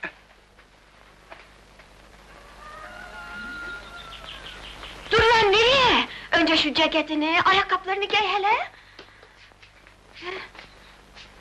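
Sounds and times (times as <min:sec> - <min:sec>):
steady outdoor noise: 0:00.0 - 0:11.3
rooster crowing: 0:02.2 - 0:04.7
faint chirps and clucks: 0:02.3 - 0:05.2
speech: 0:06.4 - 0:08.8.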